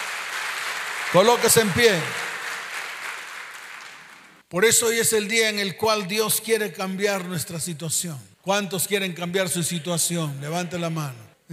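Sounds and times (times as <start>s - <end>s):
crowd applauding: 0.0s - 4.4s
speech: 1.1s - 2.3s, 4.5s - 11.5s.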